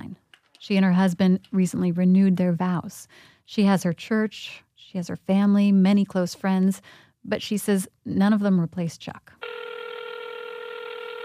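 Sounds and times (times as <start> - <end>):
speech: 0.6 - 9.6
touch-tone sound of a cell phone number being dialed: 9.4 - 11.2.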